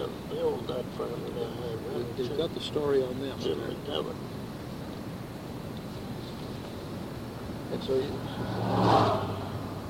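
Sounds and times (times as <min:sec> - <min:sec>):
speech: 0:00.1 - 0:04.4, 0:07.7 - 0:09.3
car driving past: 0:07.6 - 0:09.8.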